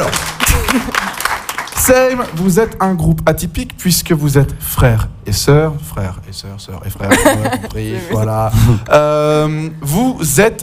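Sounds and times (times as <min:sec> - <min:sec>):
audience applause: 0:00.0 - 0:02.4
speech: 0:00.7 - 0:01.1, 0:01.9 - 0:10.6
laughter: 0:07.1 - 0:08.8.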